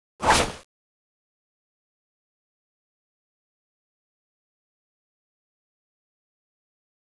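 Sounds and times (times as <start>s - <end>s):
knives slashing: 0.2s - 0.6s.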